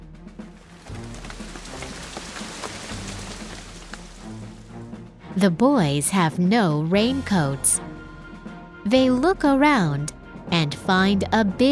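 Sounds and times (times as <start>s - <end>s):
steady rain falling on a hard surface: 0.5s - 4.7s
speech: 5.4s - 7.9s, 8.9s - 11.7s.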